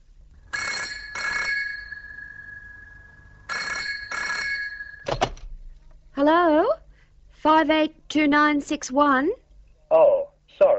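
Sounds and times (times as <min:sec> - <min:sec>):
telephone ringing in a double-burst pattern: 0:00.5 - 0:05.4
speech: 0:07.6 - 0:10.7.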